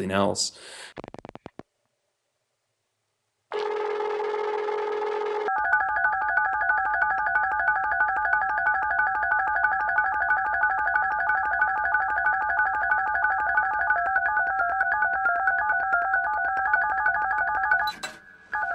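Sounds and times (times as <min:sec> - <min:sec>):
speech: 0:00.0 - 0:01.2
telephone dial tone used musically: 0:03.6 - 0:18.7
pulsing rhythmic beat: 0:05.6 - 0:17.8.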